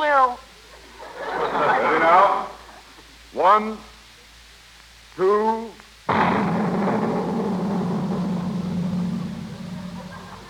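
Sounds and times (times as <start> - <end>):
speech: 0.0 - 0.5, 3.3 - 3.9, 5.2 - 6.4
laughter: 0.8 - 2.7, 10.0 - 10.4
long rumbling roar: 6.1 - 10.4
single loud cannon blast: 6.1 - 10.4.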